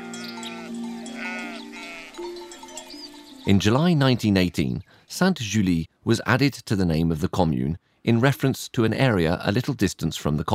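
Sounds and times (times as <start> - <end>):
sheep bleating: 0.0 - 2.4
speech: 3.4 - 10.5.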